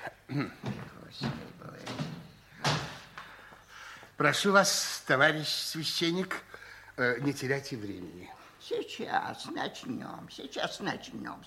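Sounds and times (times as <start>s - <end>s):
speech: 0.0s - 1.4s, 4.2s - 11.4s
wooden window shutters and door being closed and locked: 0.6s - 3.2s.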